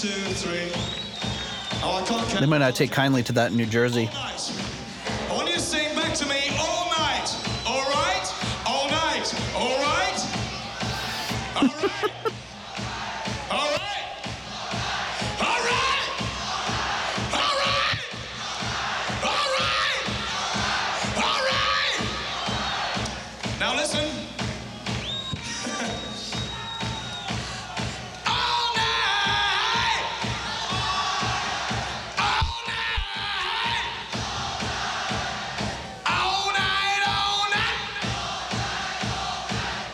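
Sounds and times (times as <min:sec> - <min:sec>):
speech: 0:00.0 - 0:04.6, 0:11.6 - 0:12.4
faint drums and music: 0:00.0 - 0:39.9
large concert crowd cheering and yelling: 0:04.4 - 0:39.9
laughter: 0:10.8 - 0:12.4.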